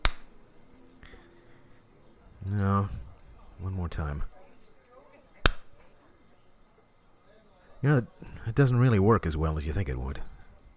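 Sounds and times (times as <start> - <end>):
man slapping himself with his hand: 0.0 - 0.3, 5.4 - 5.7
speech: 2.5 - 3.0, 3.8 - 4.3, 7.8 - 10.3.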